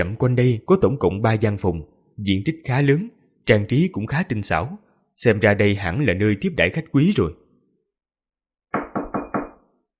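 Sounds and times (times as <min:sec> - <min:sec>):
speech: 0:00.0 - 0:07.4
knocking on a room door: 0:08.7 - 0:09.7.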